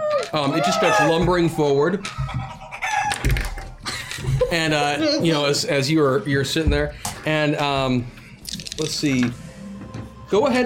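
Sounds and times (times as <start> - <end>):
person's voice mimicking a chicken golem clucking and crowing: 0.1 - 1.2
speech: 0.3 - 2.5, 4.5 - 8.2, 8.8 - 9.4, 10.3 - 10.6.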